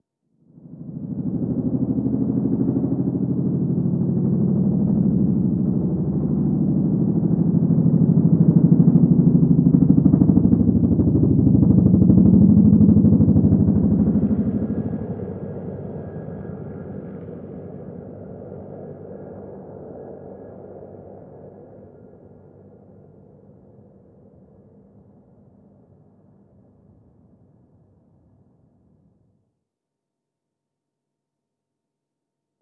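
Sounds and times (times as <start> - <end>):
helicopter flyover heard from interior: 0.6 - 26.5.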